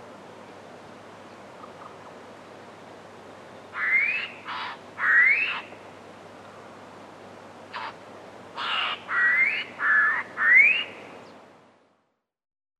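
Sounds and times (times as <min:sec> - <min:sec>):
background hiss: 0:00.0 - 0:12.3
fawn-breasted bowerbird giving harsh, buzzy calls: 0:03.7 - 0:05.9, 0:07.7 - 0:11.1.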